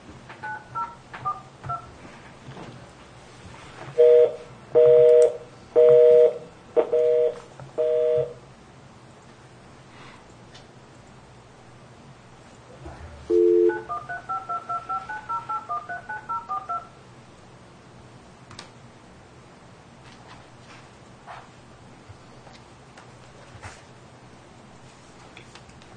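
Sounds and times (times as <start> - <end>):
DTMF keypad tones dialing an account code on a phone: 0.4 - 1.9, 4.0 - 8.4, 13.3 - 16.9.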